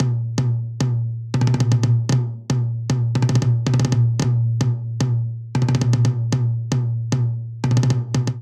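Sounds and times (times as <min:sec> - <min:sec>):
high tom in a polyrhythmic dance pattern: 0:00.0 - 0:08.4.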